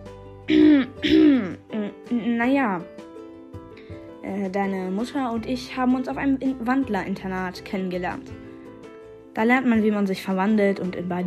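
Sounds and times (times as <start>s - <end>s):
father clearing his throat: 0.5s - 1.6s
speech: 0.5s - 1.6s, 2.4s - 2.9s, 4.2s - 8.4s, 9.4s - 11.2s.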